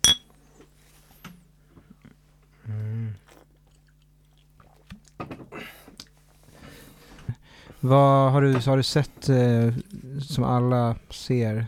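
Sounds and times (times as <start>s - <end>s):
glasses clinking in a toast: 0.0s - 0.2s
soft hum: 0.0s - 11.6s
speech: 7.8s - 11.6s.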